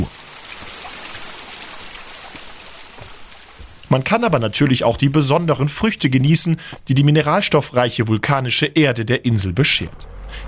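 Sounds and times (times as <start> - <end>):
steady dense rush of falling water: 0.0 - 7.8
speech: 3.9 - 10.4.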